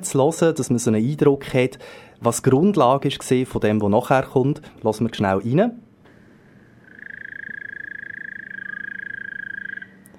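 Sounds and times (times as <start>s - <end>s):
speech: 0.0s - 5.8s
high-pitched insect trill of a cricket chorus in Costa Rica: 6.5s - 10.1s.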